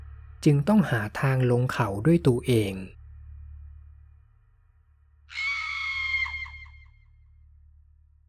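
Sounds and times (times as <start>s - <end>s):
low droning hum: 0.0s - 8.2s
speech: 0.4s - 3.0s
woman screaming for help: 5.3s - 6.8s.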